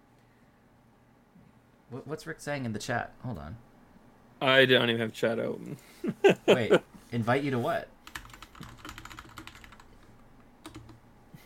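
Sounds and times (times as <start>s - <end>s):
speech: 1.9s - 3.7s, 4.4s - 8.0s
laughter: 6.0s - 6.9s
typing a reply on a computer keyboard: 8.1s - 11.0s.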